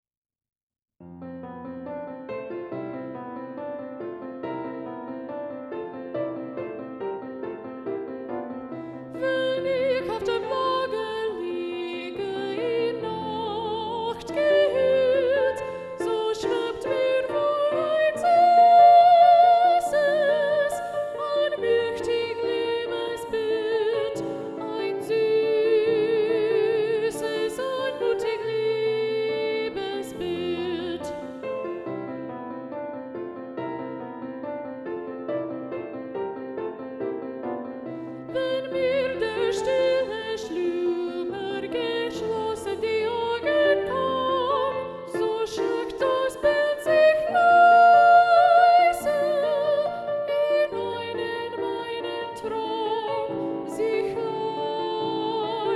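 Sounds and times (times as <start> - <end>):
soprano and alto choir singing: 9.2 - 32.1, 38.4 - 55.7.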